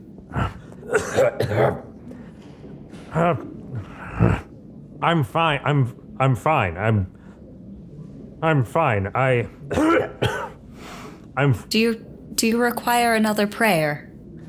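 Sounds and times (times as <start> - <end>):
deep racking cough: 0.4 - 1.9, 9.7 - 10.6
speech: 1.1 - 1.9, 3.1 - 7.2, 8.4 - 10.4, 11.4 - 14.1.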